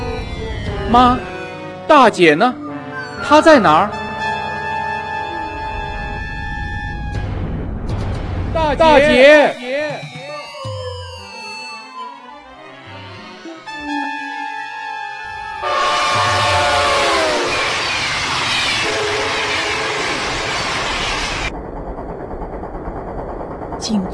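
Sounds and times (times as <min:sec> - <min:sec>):
passenger train travelling: 0:00.0 - 0:02.2, 0:03.8 - 0:09.2, 0:15.2 - 0:24.1
speech: 0:00.9 - 0:01.3, 0:01.9 - 0:02.6, 0:03.2 - 0:04.0, 0:08.7 - 0:10.0.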